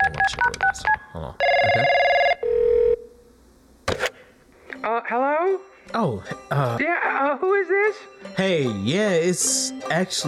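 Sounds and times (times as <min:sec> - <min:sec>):
speech: 0:00.3 - 0:02.0, 0:05.1 - 0:10.2
steady telephone ring tone: 0:01.4 - 0:03.1.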